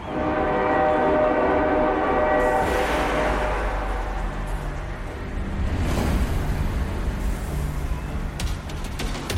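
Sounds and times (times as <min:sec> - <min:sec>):
train horn blaring: 0:00.0 - 0:05.2
train rumbling and rushing past: 0:00.0 - 0:09.2.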